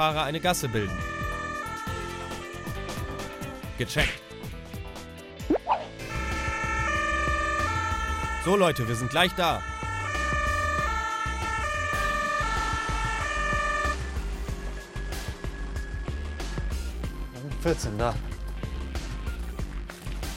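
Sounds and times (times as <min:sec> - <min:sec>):
speech: 0:00.0 - 0:01.2, 0:03.8 - 0:04.2, 0:08.4 - 0:09.7, 0:17.6 - 0:18.3
two-tone ambulance siren from inside a moving vehicle: 0:00.0 - 0:03.8, 0:06.0 - 0:17.2
ambulance engine rumble: 0:09.6 - 0:20.0.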